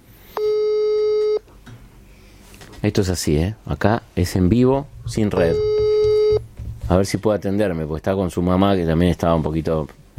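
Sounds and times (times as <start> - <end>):
telephone busy signal on an outgoing call: 0.4 - 1.4, 5.5 - 6.4
speech: 2.8 - 5.7, 6.9 - 10.1.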